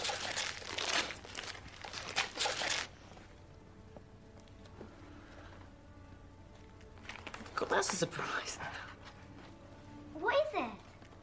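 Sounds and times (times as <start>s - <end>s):
gift wrapping paper torn and crumpled open around a CD: 0.0s - 3.2s, 6.8s - 7.9s
speech: 7.6s - 8.9s.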